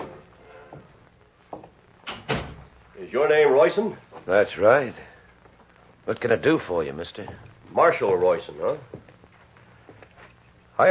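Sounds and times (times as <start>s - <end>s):
faint hiss: 0.0s - 10.8s
door thuds: 2.1s - 2.7s
speech: 3.0s - 5.1s, 6.1s - 9.0s.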